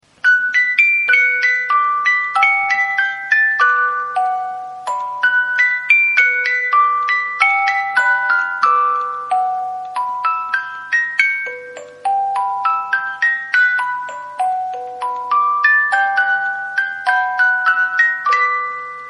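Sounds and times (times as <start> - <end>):
18-note hand-cranked music box: 0.0 - 19.0.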